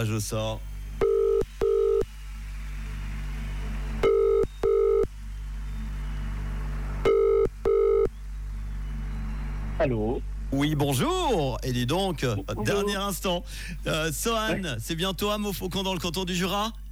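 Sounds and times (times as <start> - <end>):
speech: 0.0 - 0.7, 9.8 - 16.8
low steady hum: 0.0 - 16.8
telephone ringback tone on a repeated call after reaching voicemail: 4.0 - 5.1, 7.1 - 8.1.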